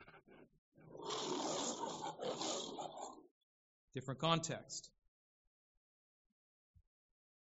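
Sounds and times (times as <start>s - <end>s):
lion roaring: 0.9s - 3.3s
speech: 3.9s - 5.0s.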